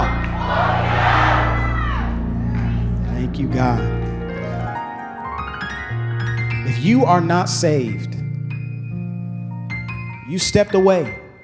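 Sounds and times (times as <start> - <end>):
large crowd shouting and cheering together: 0.0 - 4.1
sustained music tones: 0.0 - 11.4
speech: 6.8 - 8.2, 10.3 - 11.2.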